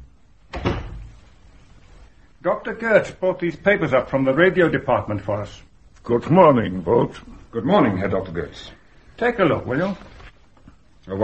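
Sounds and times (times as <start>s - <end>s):
door pulled shut: 0.5s - 1.2s
speech: 2.4s - 10.1s, 11.1s - 11.2s.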